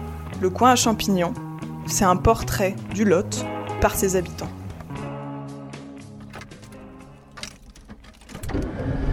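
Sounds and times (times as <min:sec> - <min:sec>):
speech: 0:00.3 - 0:04.6
car engine humming heard from inside the cabin: 0:06.2 - 0:09.0.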